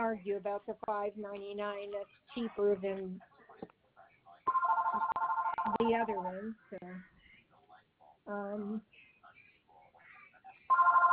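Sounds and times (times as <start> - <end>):
speech: 0.0 - 3.8, 5.7 - 7.2, 8.2 - 9.0, 10.8 - 11.1
telephone ringing with an electronic trill: 4.5 - 6.2, 10.7 - 11.1.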